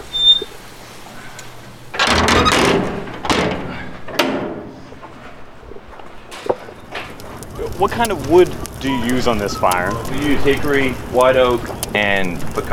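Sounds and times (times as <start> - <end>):
heavy metal doors on a barbecue pit smoker clanking shut: 2.0 - 4.7
speech: 7.8 - 12.7.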